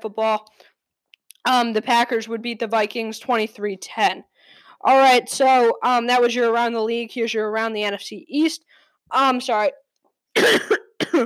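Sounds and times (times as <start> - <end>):
speech: 0.0 - 0.7, 1.4 - 9.8, 10.4 - 11.2
harsh coughs: 10.4 - 11.2.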